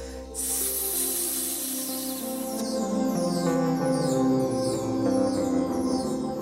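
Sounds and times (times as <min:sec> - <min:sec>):
person hissing through teeth like a snake: 0:00.0 - 0:02.6
music: 0:00.0 - 0:06.3.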